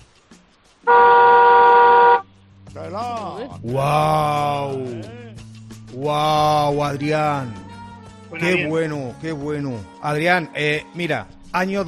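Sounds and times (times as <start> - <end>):
car horn honking: 0.9 - 2.2
speech: 3.5 - 5.2, 6.0 - 7.6, 8.3 - 11.8.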